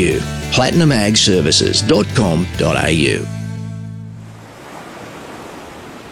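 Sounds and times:
speech: 0.0s - 3.4s
brief low tonal hum: 0.0s - 4.5s
ocean waves breaking on North Beach at Wallaroo: 4.3s - 6.0s.

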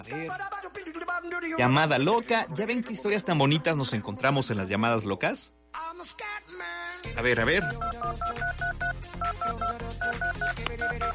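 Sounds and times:
speech: 0.0s - 6.4s, 7.1s - 8.4s
touch-tone telephone dialing beeps: 7.5s - 11.1s.

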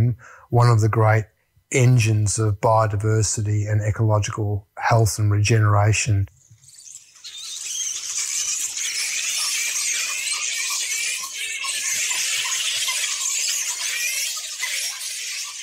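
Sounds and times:
speech: 0.0s - 6.4s
flying foxes chattering in the trees at night: 6.4s - 15.6s.

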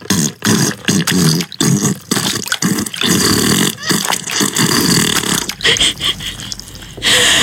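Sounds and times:
wet sputtering fart sound effect: 0.0s - 6.6s.

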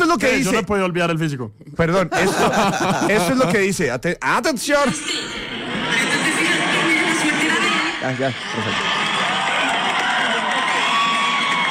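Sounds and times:
speech: 0.1s - 5.4s, 8.0s - 8.9s
laughter: 2.0s - 3.8s, 5.4s - 11.6s
crowd shouting and cheering in a played video: 5.4s - 11.6s.

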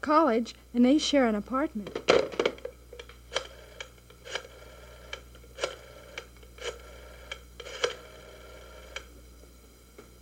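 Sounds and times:
speech: 0.0s - 2.2s
low steady hum: 0.0s - 10.2s
telephone being dialed at a hospital: 3.3s - 8.1s.

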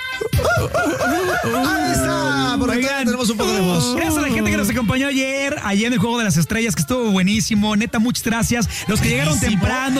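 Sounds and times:
chickens cackling: 0.2s - 2.8s
rooster crowing: 0.4s - 2.7s
speech: 0.6s - 9.9s.

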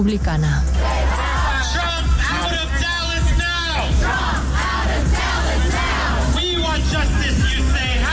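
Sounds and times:
crowd noise: 0.7s - 8.1s
activists protesting during the Republican convention chanting: 0.8s - 8.1s.

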